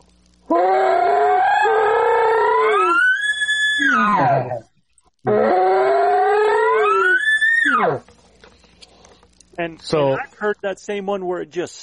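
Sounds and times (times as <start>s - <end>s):
voice imitating a bull's bugle with a gurgly start: 0.5s - 3.1s, 3.7s - 4.6s, 5.3s - 8.0s
speech: 9.8s - 11.8s.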